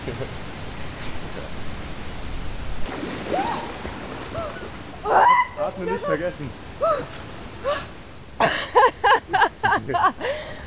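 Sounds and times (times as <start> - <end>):
water splashing as a person jumps into a cold lake: 0.0 - 7.8
speech: 0.1 - 0.5, 5.8 - 7.8, 9.3 - 10.6.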